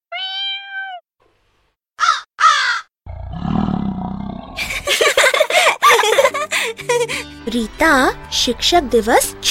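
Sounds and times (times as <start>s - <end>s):
human voice imitating cat meow: 0.1s - 1.0s
human voice imitating crow caws: 2.0s - 2.9s
human voice imitating lion roar: 3.1s - 4.7s
laughter: 4.6s - 7.2s
speech: 7.5s - 9.4s.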